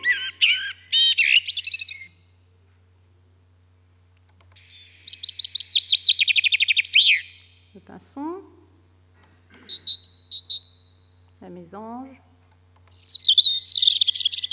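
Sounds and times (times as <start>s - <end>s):
common blackbird singing: 0.0s - 2.2s, 4.6s - 7.8s, 9.6s - 11.3s, 12.9s - 14.5s
speech: 7.9s - 8.5s, 11.5s - 12.3s.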